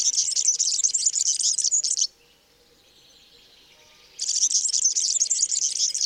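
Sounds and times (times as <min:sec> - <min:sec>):
European serin singing squeaky jingling song: 0:00.0 - 0:02.1, 0:04.2 - 0:06.0.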